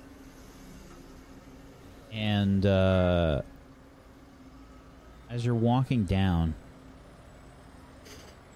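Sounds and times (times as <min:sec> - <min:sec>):
street traffic rumbling: 0:00.0 - 0:08.5
bus or truck air brake hissing: 0:00.2 - 0:01.2
speech: 0:02.1 - 0:03.5, 0:05.3 - 0:06.6.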